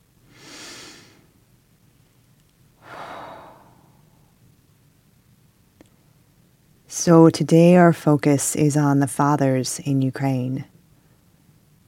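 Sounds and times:
deep breath in and out: 0:02.8 - 0:04.4
speech: 0:06.9 - 0:10.7.

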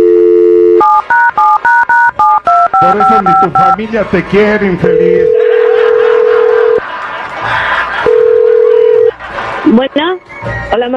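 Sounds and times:
telephone dial tone: 0:00.0 - 0:03.8, 0:05.2 - 0:06.8, 0:08.1 - 0:09.1
speech: 0:02.8 - 0:05.3, 0:09.7 - 0:10.1, 0:10.7 - 0:10.9
laughter: 0:05.0 - 0:10.3.

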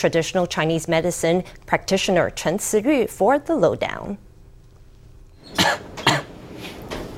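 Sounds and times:
speech: 0:00.0 - 0:04.3
throat-clearing: 0:05.4 - 0:06.3
person coughing: 0:05.5 - 0:06.4.

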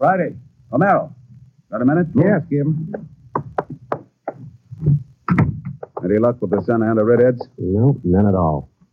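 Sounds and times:
speech: 0:00.0 - 0:03.2, 0:06.1 - 0:08.7
sharp wooden knocks of an office door: 0:02.9 - 0:07.6.

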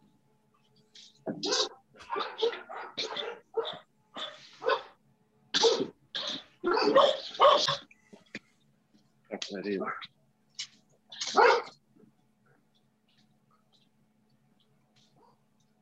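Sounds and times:
dogs barking: 0:01.3 - 0:05.0, 0:05.6 - 0:07.9, 0:11.1 - 0:11.8, 0:15.0 - 0:15.5
speech: 0:09.6 - 0:10.2.

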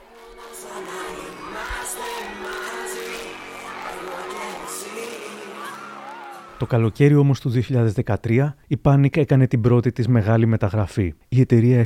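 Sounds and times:
large crowd of boy band fans screaming and shrieking: 0:00.0 - 0:07.2
speech: 0:06.6 - 0:11.8.

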